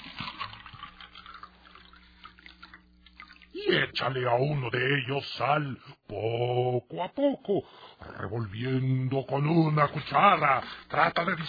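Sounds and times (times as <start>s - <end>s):
water pouring and splashing into two glasses: 0.0s - 3.7s
speech: 3.7s - 11.4s.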